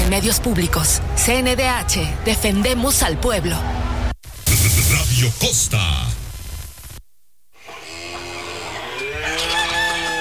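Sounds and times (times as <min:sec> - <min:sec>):
speech: 0:00.1 - 0:03.9, 0:05.2 - 0:06.2
hens clucking and squawking: 0:07.6 - 0:10.1
rooster crowing: 0:07.9 - 0:10.1.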